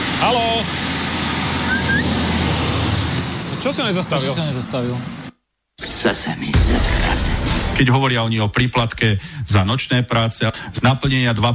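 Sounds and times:
speech: 0.2s - 1.0s, 3.6s - 5.2s, 6.0s - 11.5s
car driving past with rumble and tire hiss: 1.4s - 3.8s
faint high whistle: 1.7s - 2.1s.

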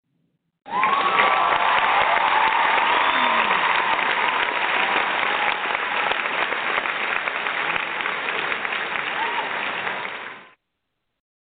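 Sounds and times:
crowd cheers and whoops: 0.6s - 6.6s, 8.9s - 10.5s
crowd applause: 0.6s - 10.6s.

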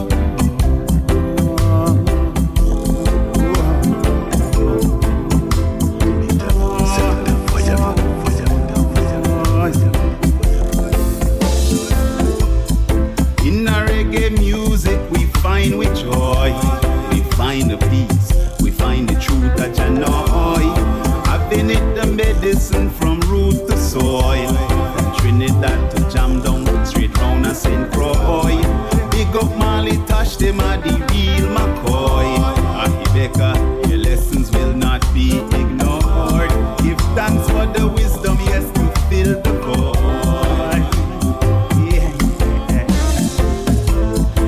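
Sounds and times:
music track with driving drum beat, deep bass and melodic instruments: 0.0s - 44.4s.

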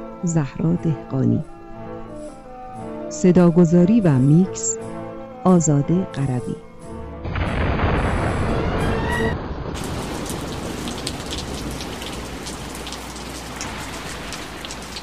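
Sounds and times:
speech: 0.2s - 1.5s, 3.1s - 6.7s
heavy rain drumming on surfaces: 7.3s - 15.0s.

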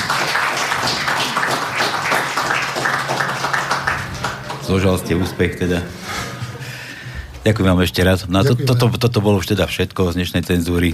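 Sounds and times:
crowd applause in a large room: 0.0s - 6.9s
speech: 4.7s - 6.2s, 7.4s - 10.9s.

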